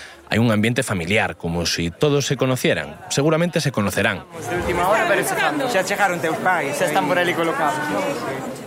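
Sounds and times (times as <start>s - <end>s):
crowd chattering in a temporary rally tent: 0.0s - 8.6s
speech: 0.3s - 8.6s.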